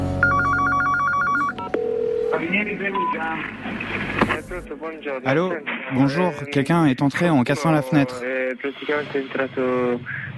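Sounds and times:
rapid trilling phone ring on a call to the police: 0.2s - 2.2s
phone dialing tones on a call to the police: 0.2s - 3.2s
speech: 2.9s - 10.3s.

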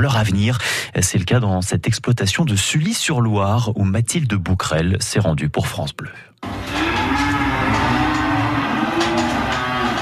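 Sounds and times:
speech: 0.0s - 6.6s
cows mooing on a farm in Sully-sur-Loire France: 6.4s - 10.0s.

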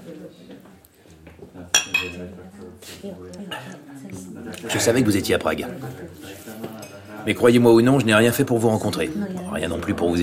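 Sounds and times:
low murmur of voices: 0.0s - 10.2s
glasses clinking in a toast: 1.7s - 2.2s
speech: 2.2s - 6.6s, 7.2s - 10.2s.

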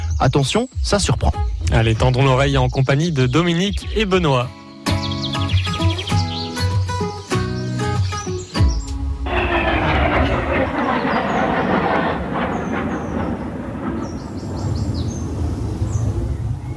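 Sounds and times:
birds chirping in a garden: 0.0s - 16.7s
speech: 0.2s - 5.1s
airplane roaring over a garden with ponds: 9.0s - 16.7s.

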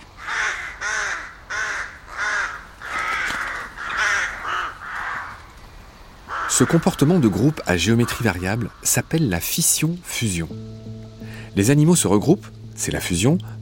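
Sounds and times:
crows cawing: 0.2s - 5.6s, 6.2s - 8.9s
speech: 6.6s - 10.9s, 11.6s - 13.6s.

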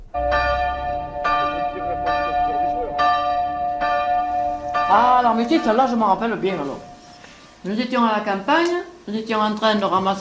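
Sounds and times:
large bell tolling: 0.0s - 7.4s
speech: 4.9s - 6.9s, 7.6s - 10.1s.

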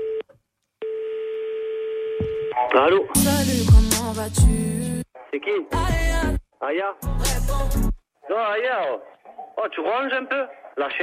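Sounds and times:
telephone tones as a call is placed: 0.0s - 2.7s
speech: 2.6s - 11.0s.

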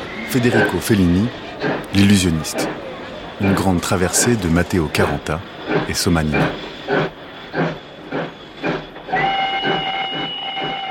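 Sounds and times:
steam train chugging: 0.0s - 10.8s
speech: 0.3s - 2.8s, 3.4s - 7.7s
steam train long high whistle: 9.1s - 10.8s.

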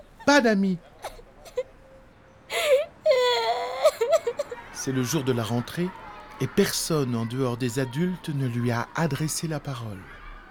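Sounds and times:
speech: 0.3s - 0.9s, 4.8s - 10.2s
child crying with whimpers and wailing sobs: 2.5s - 4.6s
laughter: 3.8s - 7.3s.

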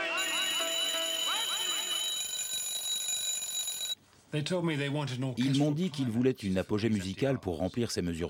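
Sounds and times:
alarm clock ringing with shrill layered electronic tone: 0.1s - 4.0s
speech: 4.3s - 8.2s.

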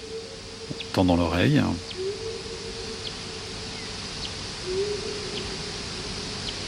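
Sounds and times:
low droning hum: 0.0s - 6.6s
slowed echolocation calls of a Daubenton's bat hunting over a pond: 0.0s - 6.6s
steady hiss: 0.0s - 6.6s
speech: 0.7s - 2.0s.

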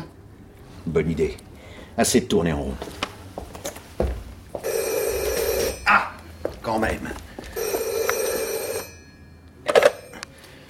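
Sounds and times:
speech: 0.8s - 3.1s, 5.9s - 6.1s, 6.7s - 7.2s
telephone ringing: 4.6s - 5.9s, 7.5s - 10.3s.

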